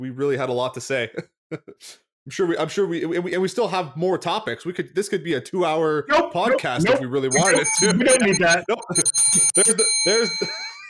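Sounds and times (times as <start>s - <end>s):
speech: 0.0s - 10.7s
bright bell ringing: 7.4s - 10.8s.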